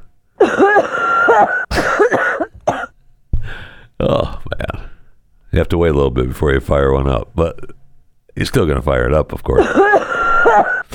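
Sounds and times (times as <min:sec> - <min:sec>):
harsh raspy wheezy coughing fit: 0:00.4 - 0:02.9, 0:09.6 - 0:10.9
speech: 0:00.5 - 0:01.6, 0:05.6 - 0:07.8, 0:08.4 - 0:10.9.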